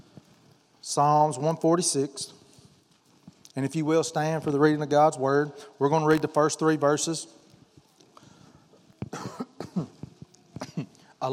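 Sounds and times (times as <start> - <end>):
speech: 0.8 - 2.4, 3.6 - 7.4
person with a cough coughing in harsh bursts: 9.1 - 11.0
throat clearing: 9.1 - 11.0.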